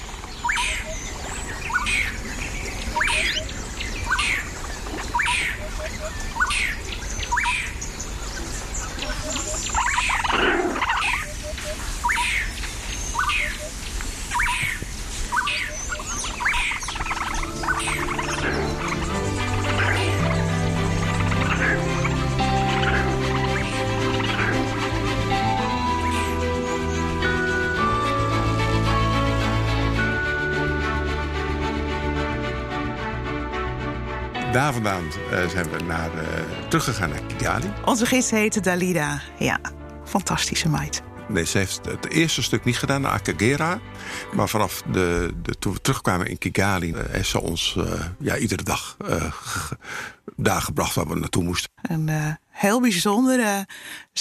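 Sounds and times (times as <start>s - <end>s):
busy chorus of many birds calling: 0.0s - 38.6s, 40.7s - 48.2s
instrumental music: 15.7s - 45.4s
speech: 34.8s - 54.1s.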